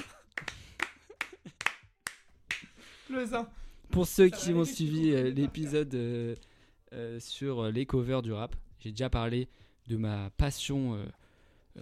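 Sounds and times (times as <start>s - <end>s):
hands clapping: 0.0s - 2.8s
speech: 3.1s - 11.2s
laughter: 4.2s - 6.2s.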